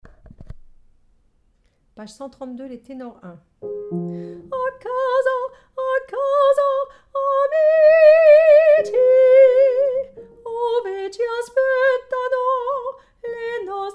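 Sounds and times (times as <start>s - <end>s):
tenor singing: 3.6s - 13.9s.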